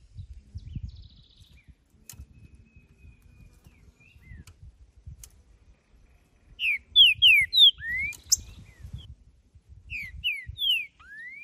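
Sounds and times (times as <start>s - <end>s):
wild male green-winged saltator singing territorial song: 0.1s - 4.6s, 6.1s - 9.1s, 9.9s - 11.4s.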